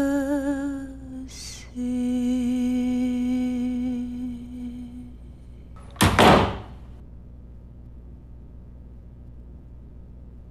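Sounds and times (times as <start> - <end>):
steady humming musical tone: 0.0 - 6.0
wooden door yanked open and banging shut: 5.8 - 6.8.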